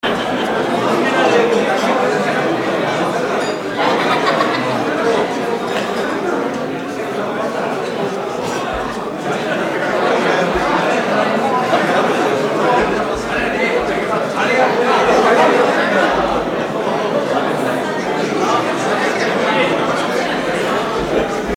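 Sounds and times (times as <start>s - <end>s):
laughter: 0.0s - 21.5s
party hubbub: 0.0s - 21.5s.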